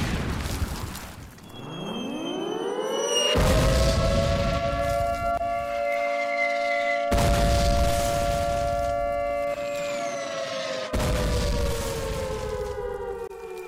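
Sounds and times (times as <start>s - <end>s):
air raid warning siren wailing: 1.4s - 13.6s.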